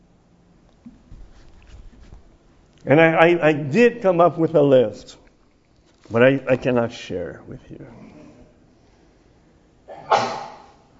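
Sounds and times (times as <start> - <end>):
speech: 2.8 - 5.2, 6.1 - 8.2
sneeze: 9.9 - 10.9.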